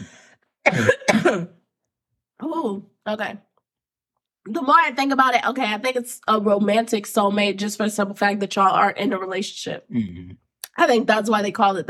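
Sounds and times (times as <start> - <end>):
person clearing throat: 0.6 - 1.6, 9.9 - 10.4
speech: 0.7 - 1.6, 2.4 - 3.5, 4.4 - 11.8.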